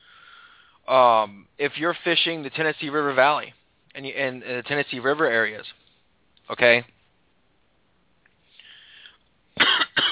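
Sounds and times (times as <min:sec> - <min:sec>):
breathing: 0:00.0 - 0:00.9, 0:08.4 - 0:09.3
speech: 0:00.9 - 0:05.8, 0:06.5 - 0:07.0
harsh cough: 0:09.6 - 0:10.0.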